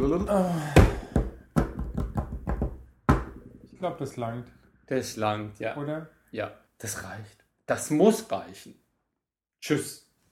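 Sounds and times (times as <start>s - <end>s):
speech: 0.1s - 0.9s, 3.8s - 8.8s, 9.6s - 10.0s
sharp knocks on a hard surface: 0.8s - 3.5s.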